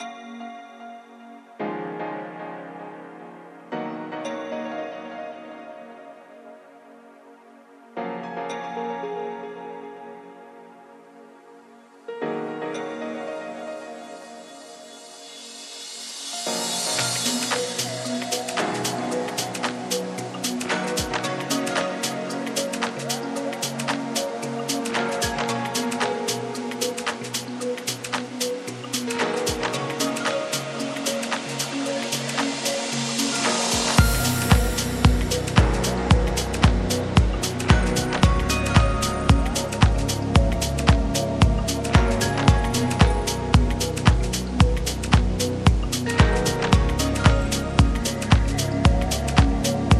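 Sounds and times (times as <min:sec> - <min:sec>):
sweet piano: 0:00.0 - 0:49.9
electronic dance music: 0:15.8 - 0:49.9.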